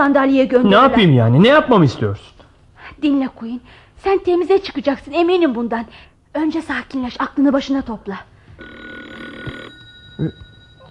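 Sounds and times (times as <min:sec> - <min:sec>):
speech: 0:00.0 - 0:02.4, 0:03.0 - 0:08.9, 0:10.2 - 0:10.4
low noise: 0:00.0 - 0:10.8
telephone ringing with a bright buzzing electronic tone: 0:08.6 - 0:10.8.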